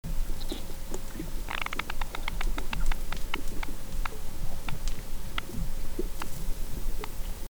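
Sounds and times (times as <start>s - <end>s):
fish farts of the Kennebec: 0.1s - 7.2s.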